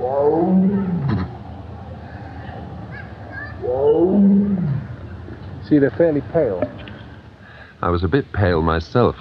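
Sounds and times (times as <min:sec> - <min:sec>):
tigers roaring as they greet a visitor: 0:00.0 - 0:01.4, 0:03.6 - 0:05.0
speech: 0:05.7 - 0:06.9, 0:07.8 - 0:09.2.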